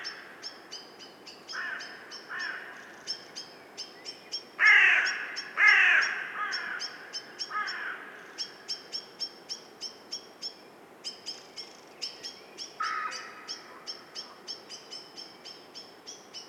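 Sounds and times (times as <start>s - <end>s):
Carrion crow (Corvus corone) giving hoarse caws: 1.5s - 3.0s, 4.6s - 8.4s, 12.8s - 14.0s.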